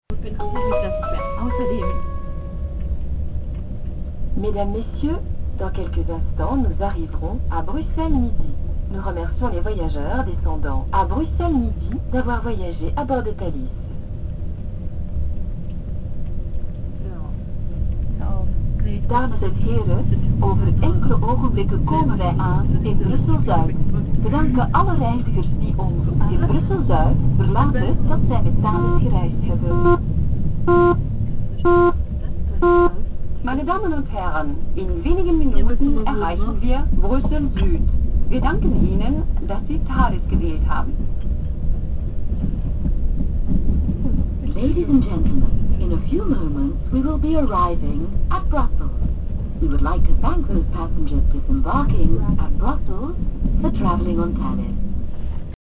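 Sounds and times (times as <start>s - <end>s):
Thalys high-speed train: 0.1s - 55.6s.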